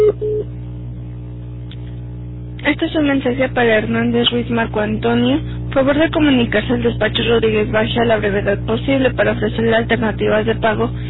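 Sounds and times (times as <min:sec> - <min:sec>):
voicemail recording beep tones: 0:00.0 - 0:00.5
low steady hum: 0:00.0 - 0:11.0
speech: 0:02.7 - 0:11.0.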